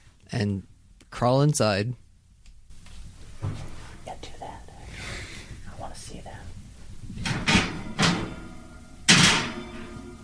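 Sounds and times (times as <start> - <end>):
speech: 0.3 - 2.0
oven door opening: 7.2 - 10.2.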